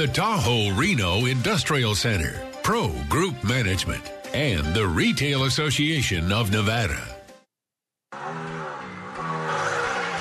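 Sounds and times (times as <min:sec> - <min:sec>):
speech: 0:00.0 - 0:07.1
car engine roaring: 0:08.1 - 0:10.1.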